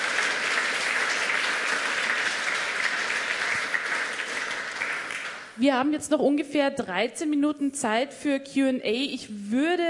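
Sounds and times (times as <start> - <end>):
applause from a large audience: 0.0 - 5.6
speech: 5.6 - 9.8.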